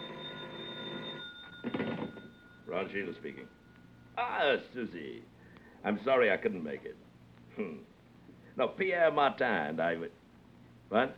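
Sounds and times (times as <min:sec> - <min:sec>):
telephone bell ringing: 0:00.0 - 0:04.2
speech: 0:02.8 - 0:03.6, 0:04.2 - 0:07.9, 0:08.6 - 0:10.2, 0:10.9 - 0:11.1.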